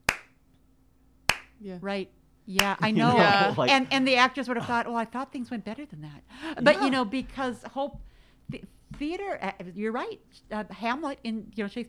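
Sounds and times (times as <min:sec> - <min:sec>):
sharp slow deliberate hand claps: 0:00.0 - 0:00.4, 0:01.3 - 0:01.6, 0:02.6 - 0:02.8
speech: 0:01.6 - 0:11.8.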